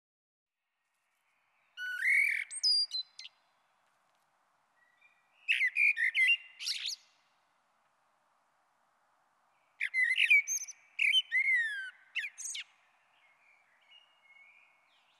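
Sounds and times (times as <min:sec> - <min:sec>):
Common blackbird song: 0:00.6 - 0:03.8, 0:04.7 - 0:07.5, 0:09.4 - 0:15.1.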